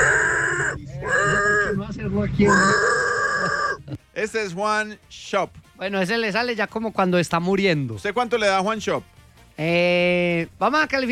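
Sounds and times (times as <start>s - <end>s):
person imitating pig grunting and oinking in a pig-imitation contest: 0.0s - 1.8s, 2.4s - 4.0s
speech: 1.9s - 3.0s, 4.2s - 11.0s.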